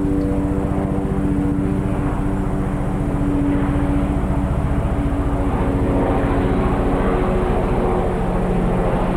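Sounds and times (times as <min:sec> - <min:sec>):
helicopter flying overhead: 0:00.0 - 0:09.1.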